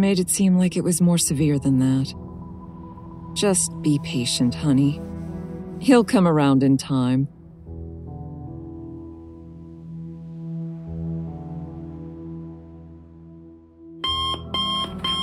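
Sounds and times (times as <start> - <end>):
speech: 0.0 - 2.3, 3.4 - 5.1, 5.8 - 7.4
harsh droning alarm clock with pulsing bursts of piercing tone: 14.0 - 15.2.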